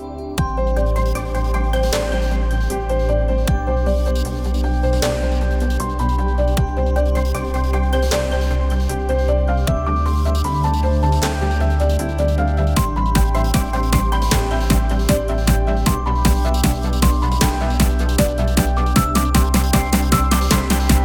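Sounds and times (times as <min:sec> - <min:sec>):
future bass music arrangement: 0:00.4 - 0:21.0.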